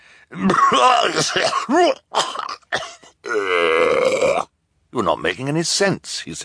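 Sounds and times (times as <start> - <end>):
speech: 0.3 - 2.5, 3.3 - 6.4
man coughing into a handkerchief: 0.4 - 3.4
man clearing throat with grunts: 0.4 - 4.5.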